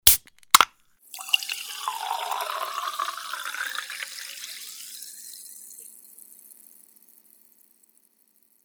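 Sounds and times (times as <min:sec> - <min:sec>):
beer can opening: 0:00.0 - 0:04.8
beer pouring in: 0:00.5 - 0:07.6.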